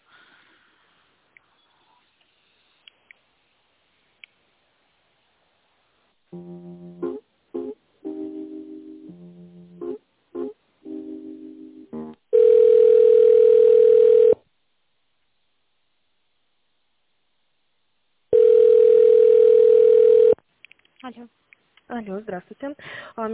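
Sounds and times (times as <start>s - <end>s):
speech: 6.3s - 6.6s, 22.0s - 23.3s
telephone ringback tone while a call is being transferred: 12.3s - 14.4s, 18.3s - 20.4s.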